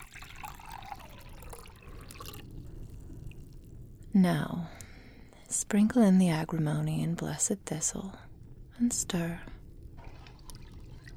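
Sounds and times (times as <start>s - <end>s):
water pouring from a jar into a cauldron: 0.0s - 5.8s, 7.9s - 11.1s
speech: 4.2s - 4.8s, 5.6s - 9.5s.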